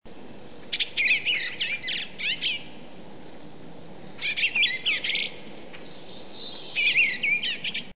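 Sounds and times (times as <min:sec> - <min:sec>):
bluebird singing: 0:00.6 - 0:02.8, 0:04.1 - 0:07.9.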